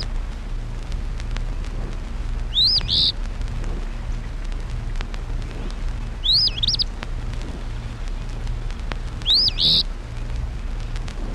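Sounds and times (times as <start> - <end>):
low droning hum: 0.0 - 11.3
Eastern Phoebe singing a husky two-note phrase: 2.5 - 3.1, 6.2 - 6.9, 9.2 - 9.8.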